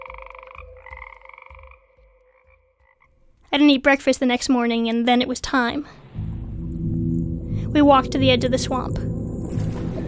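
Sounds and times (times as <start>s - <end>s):
frogs croaking in a swamp: 0.0s - 3.2s, 5.9s - 10.0s
speech: 3.6s - 6.0s, 7.7s - 9.1s.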